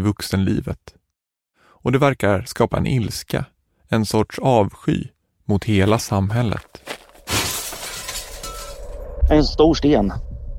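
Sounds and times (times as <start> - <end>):
speech: 0.0 - 1.0, 1.8 - 6.9, 9.3 - 10.3
glass fragments tinkling and scattering: 7.2 - 9.0
window pane shattering with a loud crash: 7.2 - 9.0.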